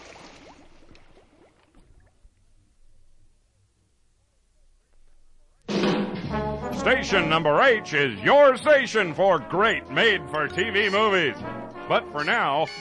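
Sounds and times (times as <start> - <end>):
liquid bubbling and gurgling: 0.0 - 3.1
speech: 6.8 - 12.7.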